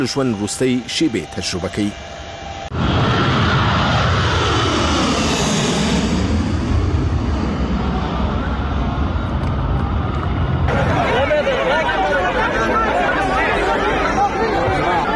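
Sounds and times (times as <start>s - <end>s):
speech: 0.0s - 2.2s
airplane engine roaring at an airport: 0.0s - 15.1s
crowd chatter beneath airplane wings: 7.8s - 15.1s.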